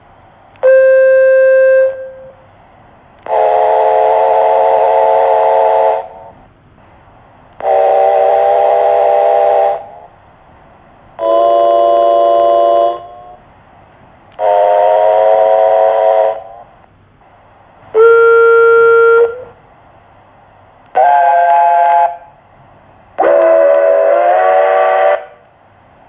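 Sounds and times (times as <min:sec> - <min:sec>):
Australasian locomotive whistles: 0:00.6 - 0:02.4, 0:03.2 - 0:06.4, 0:07.6 - 0:10.0, 0:11.2 - 0:13.4, 0:14.4 - 0:16.7, 0:18.0 - 0:19.6, 0:20.9 - 0:22.4, 0:23.2 - 0:25.5.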